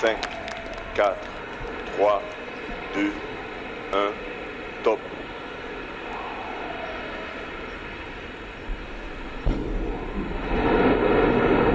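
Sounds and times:
speech: 0:00.0 - 0:00.3, 0:01.0 - 0:01.4, 0:02.0 - 0:03.3, 0:03.9 - 0:05.3
rocket liftoff with main engine and solid boosters igniting: 0:00.0 - 0:11.7.

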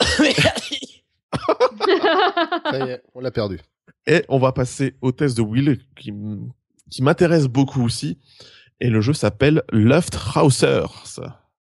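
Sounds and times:
laughter: 0:00.0 - 0:00.8, 0:01.4 - 0:03.4
person coughing: 0:00.0 - 0:03.0
speech: 0:02.4 - 0:11.4.

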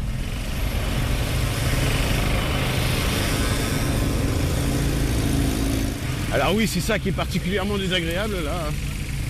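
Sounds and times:
motorbikes passing along a cycle lane: 0:00.0 - 0:09.2
speech: 0:06.4 - 0:08.9.

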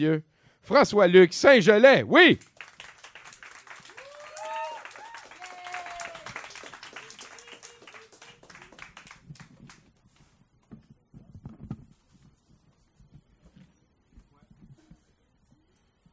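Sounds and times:
speech: 0:00.0 - 0:02.5
audience applause as a performer is introduced: 0:02.3 - 0:09.9
scattered audience cheers and whoops: 0:03.8 - 0:08.8.

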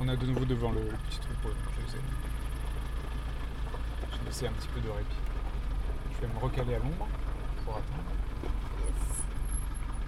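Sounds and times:
large vehicle engine idling with heavy low rumble: 0:00.0 - 0:10.0
speech: 0:00.1 - 0:02.5, 0:04.2 - 0:05.4, 0:06.2 - 0:08.7
high thin vehicle brake pad squeal: 0:08.7 - 0:10.0.

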